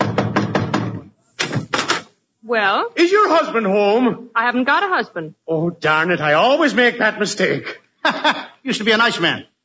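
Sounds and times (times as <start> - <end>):
sharp knocks on the door of a house: 0.0 - 1.0
speech: 2.5 - 9.5.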